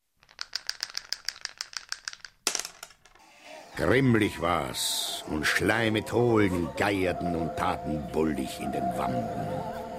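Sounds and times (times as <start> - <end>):
dice rattling in a cup: 0.0 - 3.2
speech: 3.8 - 9.8.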